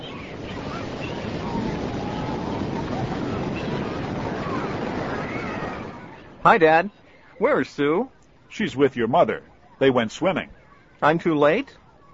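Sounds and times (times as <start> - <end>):
ocean waves on an Atlantic beach: 0.0 - 6.8
speech: 6.4 - 12.1.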